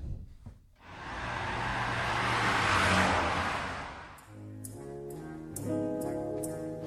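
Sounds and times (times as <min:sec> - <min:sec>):
BMW car engine revving and roaring past: 0:00.8 - 0:04.5
bright rhythmic musical notes: 0:04.2 - 0:06.8.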